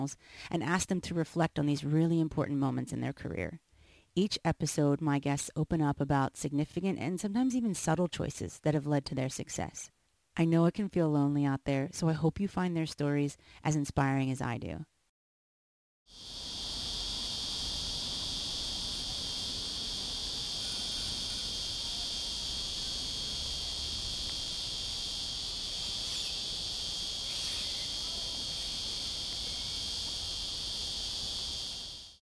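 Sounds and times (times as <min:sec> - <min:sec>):
speech: 0:00.0 - 0:03.6, 0:04.2 - 0:14.9, 0:16.1 - 0:16.5
chorus of cicadas rattling in palm trees: 0:16.1 - 0:32.2.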